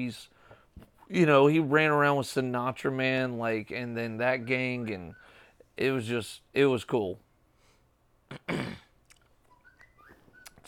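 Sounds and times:
speech: 0:00.0 - 0:00.4, 0:01.1 - 0:05.2, 0:05.8 - 0:07.2, 0:08.3 - 0:08.8
faint thin electronic whistle chirping: 0:04.0 - 0:05.5, 0:09.5 - 0:10.6
throaty cough-like burst: 0:08.3 - 0:09.0.

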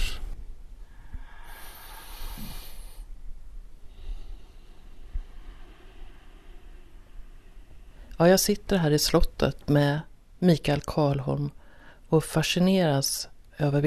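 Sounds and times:
slow soft breath in and out: 0:00.0 - 0:08.2, 0:11.6 - 0:12.1
faint hiss: 0:00.0 - 0:13.8
speech: 0:08.2 - 0:13.8.

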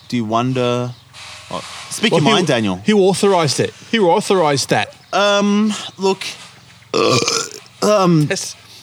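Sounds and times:
speech: 0:00.1 - 0:08.6
person burping deliberately: 0:06.9 - 0:08.0.

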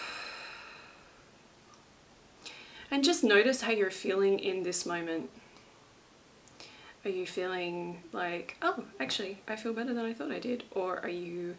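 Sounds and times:
deep soft breath out during a guided breathing exercise: 0:00.0 - 0:01.3, 0:02.4 - 0:02.9, 0:06.6 - 0:07.0
speech: 0:02.9 - 0:05.5, 0:07.0 - 0:11.5.

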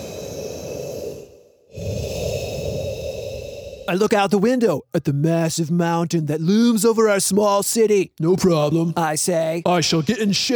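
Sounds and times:
person taking a deep breath in a doctor's office: 0:00.0 - 0:03.9
speech: 0:03.9 - 0:10.5.

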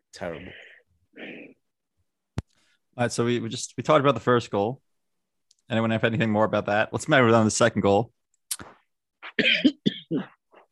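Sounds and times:
speech: 0:00.2 - 0:00.6, 0:03.0 - 0:04.8, 0:05.7 - 0:08.7
person coughing in short harsh rasping bursts: 0:09.2 - 0:10.4.

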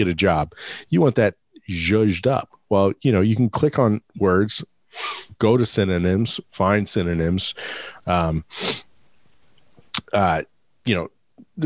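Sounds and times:
speech: 0:00.0 - 0:08.9, 0:10.1 - 0:11.6
person sneezing: 0:08.5 - 0:08.9.

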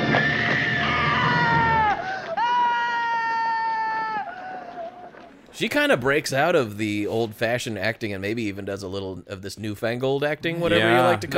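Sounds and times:
woman screaming in a film scene: 0:00.0 - 0:05.1
speech: 0:05.6 - 0:11.3.

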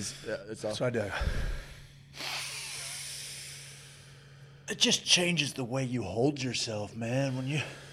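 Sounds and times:
speech: 0:00.0 - 0:01.5, 0:04.7 - 0:07.9
long deep breath: 0:01.1 - 0:04.7, 0:07.5 - 0:07.9.

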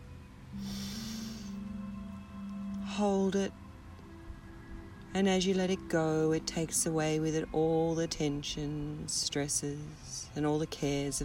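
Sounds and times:
low steady hum: 0:00.0 - 0:11.2
deep breath in during a guided relaxation exercise: 0:00.5 - 0:01.6
speech: 0:03.0 - 0:03.6, 0:05.1 - 0:11.2.

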